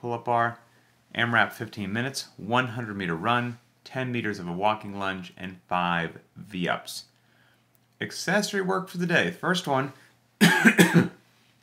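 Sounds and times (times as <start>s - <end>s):
speech: 0.0s - 7.1s, 8.0s - 11.1s
harsh coughing: 10.4s - 11.2s.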